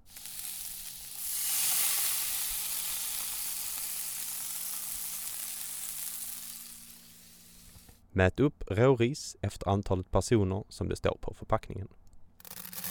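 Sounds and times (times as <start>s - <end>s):
coriander mixture, red paprika strips and peas sizzling in a frying pan: 0.0s - 8.0s
speech: 8.2s - 12.0s.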